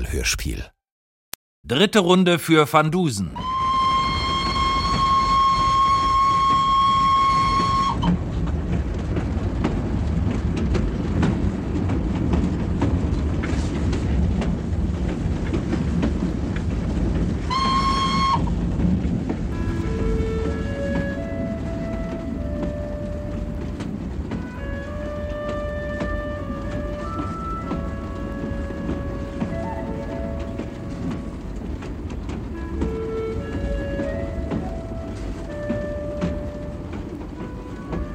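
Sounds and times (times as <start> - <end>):
speech: 0.0 - 0.8, 1.6 - 3.5
express train roaring loudly along the rails: 1.7 - 38.1
train whistle blast: 3.4 - 8.2, 17.5 - 18.6, 19.5 - 23.8, 24.4 - 31.2, 32.6 - 38.1.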